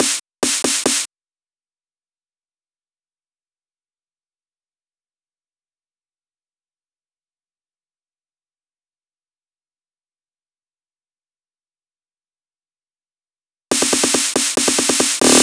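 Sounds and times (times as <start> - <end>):
snare drum hits: 0.0 - 1.1, 13.7 - 15.4.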